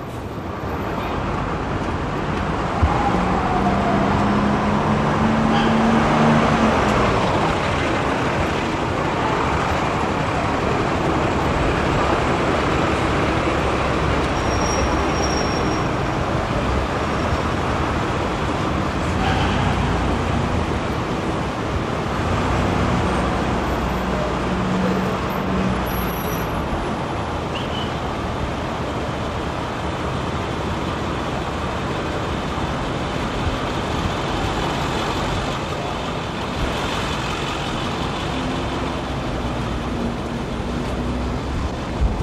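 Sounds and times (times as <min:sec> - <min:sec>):
city street traffic of passing cars and heavier vehicles: 0:00.0 - 0:42.2.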